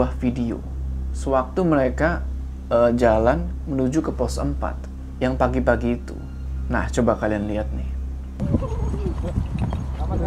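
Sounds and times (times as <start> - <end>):
low rumble: 0.0 - 10.2
speech: 0.0 - 10.2
voice-like murmuring: 8.4 - 9.4
horse hooves clip-clopping: 8.4 - 10.2.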